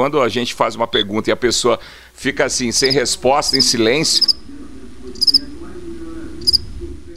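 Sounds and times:
speech: 0.0s - 4.3s
low steady rumble: 2.4s - 7.1s
crickets chirping: 2.8s - 4.4s, 5.2s - 5.5s, 6.4s - 7.1s.

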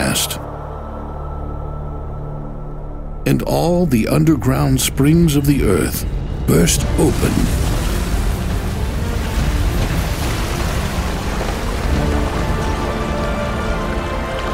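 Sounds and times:
speech: 3.3s - 7.7s
heavy steady downpour: 6.5s - 14.5s.

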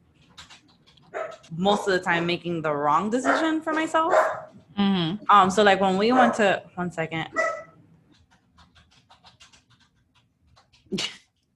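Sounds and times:
dog panting: 0.0s - 4.6s, 7.4s - 11.4s
dog barking: 1.1s - 1.9s, 3.2s - 4.6s, 6.1s - 6.5s, 7.4s - 7.8s
speech: 1.5s - 7.4s.

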